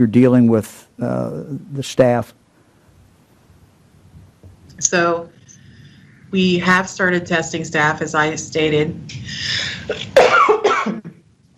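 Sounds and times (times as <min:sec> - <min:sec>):
speech: 0:00.0 - 0:02.4, 0:04.8 - 0:05.4, 0:06.3 - 0:10.7
person coughing in harsh bursts: 0:09.9 - 0:11.2.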